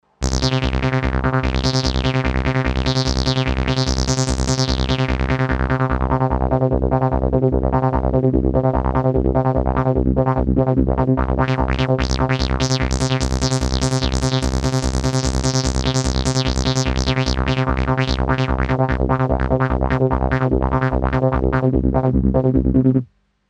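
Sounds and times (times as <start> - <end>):
arpeggio: 0.2 - 7.9, 8.8 - 23.0.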